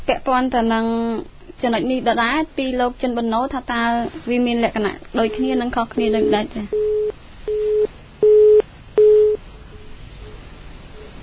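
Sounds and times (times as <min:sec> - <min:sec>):
speech: 0:00.1 - 0:07.0
phone line disconnect tone after a call drops on a weak internet connection: 0:06.0 - 0:09.4.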